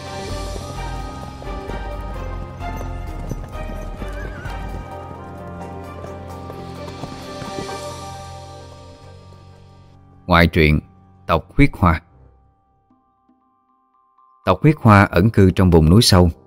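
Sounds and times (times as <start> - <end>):
galloping hooves of a troop of mounted soldiers riding at full speed: 0.0 - 9.9
horses neighing: 0.6 - 8.4
speech: 10.3 - 12.0, 14.4 - 16.4.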